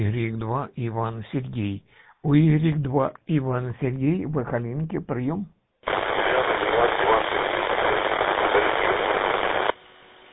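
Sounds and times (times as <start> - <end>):
speech: 0.0 - 5.6
heavy radio static hiss and interference: 5.8 - 10.3
faint voice in radio transmission: 5.9 - 9.7.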